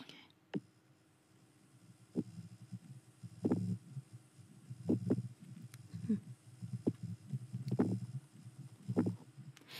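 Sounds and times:
steady drone: 0:00.0 - 0:09.7
low murky pulsating hum: 0:00.6 - 0:09.6
soft throbbing beats: 0:01.8 - 0:09.6.

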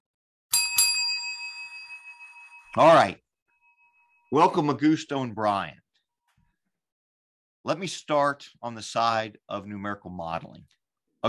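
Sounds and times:
bright metallic bell struck to start a round: 0:00.5 - 0:04.8
speech: 0:02.8 - 0:03.2, 0:04.3 - 0:05.8, 0:07.6 - 0:11.2.

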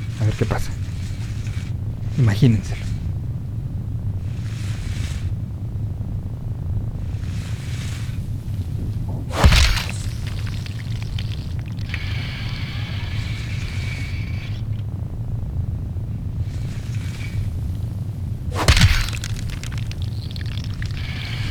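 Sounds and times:
steady low rumble: 0:00.0 - 0:21.4
speech: 0:00.2 - 0:00.9, 0:02.2 - 0:02.9
water falling from a giant spider's leg in a video game: 0:09.2 - 0:11.9, 0:18.5 - 0:21.4.

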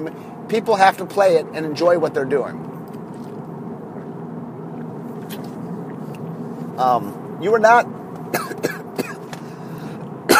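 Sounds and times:
speech: 0:00.0 - 0:02.8, 0:06.8 - 0:08.4
person coughing: 0:08.3 - 0:09.3.

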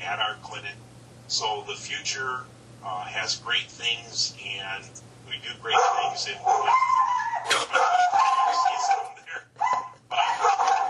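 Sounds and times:
speech: 0:00.1 - 0:09.1
dogs barking and yelping: 0:05.7 - 0:10.8.

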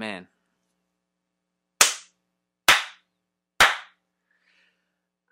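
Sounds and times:
sharp loud slaps: 0:01.8 - 0:04.0.

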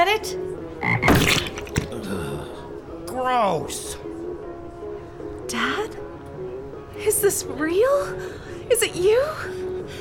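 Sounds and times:
speech: 0:00.0 - 0:01.0, 0:03.2 - 0:04.1, 0:07.2 - 0:09.6
frog croaking: 0:00.8 - 0:01.5.

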